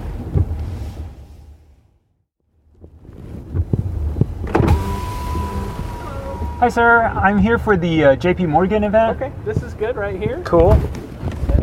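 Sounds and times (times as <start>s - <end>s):
low engine rumble inside the car: 0.0s - 11.6s
thumps and steady tone as the car window finishes: 2.7s - 11.6s
car power window motor whirring as the glass slides down: 4.4s - 6.7s
speech: 6.6s - 11.0s.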